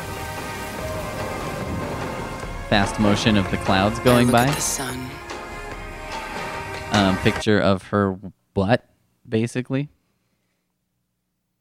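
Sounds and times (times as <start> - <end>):
steady rain: 0.0 - 3.3
speech: 2.7 - 5.2, 6.9 - 10.0.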